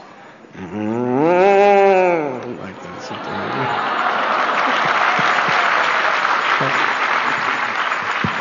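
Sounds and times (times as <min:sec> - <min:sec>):
speech: 0:00.6 - 0:01.0
person imitating cow mooing: 0:00.6 - 0:02.4
laughter: 0:02.0 - 0:08.3.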